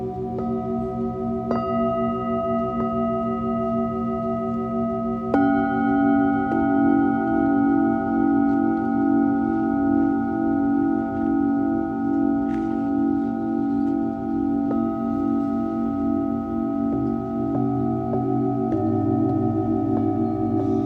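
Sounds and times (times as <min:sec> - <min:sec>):
singing bowls ringing in a sound healing session: 0:00.0 - 0:20.8.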